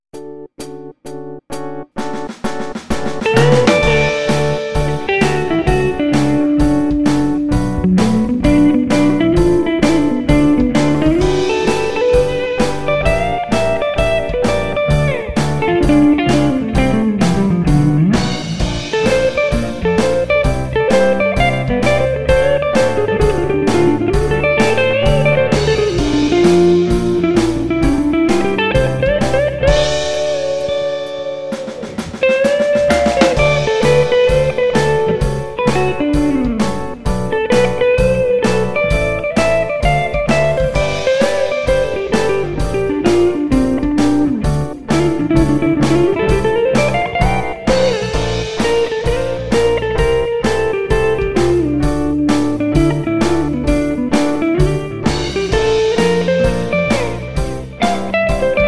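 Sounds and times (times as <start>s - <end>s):
pop style guitar: 2.2s - 58.6s.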